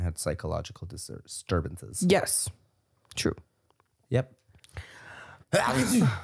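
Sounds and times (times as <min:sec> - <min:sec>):
speech: 0:00.1 - 0:03.5, 0:04.1 - 0:04.9, 0:05.5 - 0:06.2
person sneezing: 0:05.6 - 0:06.2.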